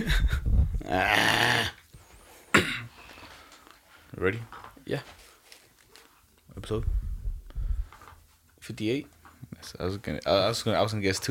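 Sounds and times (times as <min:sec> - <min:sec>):
person hawking up a loogie: 0:00.0 - 0:01.8
speech: 0:00.0 - 0:01.8, 0:04.2 - 0:05.2, 0:06.6 - 0:07.0, 0:08.7 - 0:11.2.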